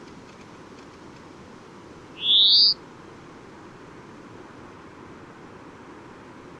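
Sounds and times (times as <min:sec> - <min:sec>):
European greenfinch Chloris chloris call: 0:02.2 - 0:02.8.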